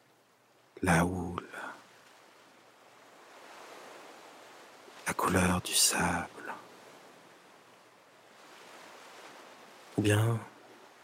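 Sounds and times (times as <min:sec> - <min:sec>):
soft steady wash of gentle ocean waves: 0:00.0 - 0:11.0
speech: 0:00.8 - 0:01.4, 0:05.2 - 0:06.6, 0:10.0 - 0:10.5.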